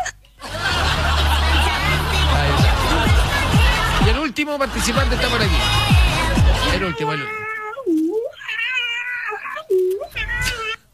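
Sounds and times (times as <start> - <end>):
laughter: 0.4 - 7.0
speech: 4.4 - 6.0, 6.7 - 7.5
cat meowing loudly into a wailing cry: 6.7 - 7.8, 8.4 - 10.8.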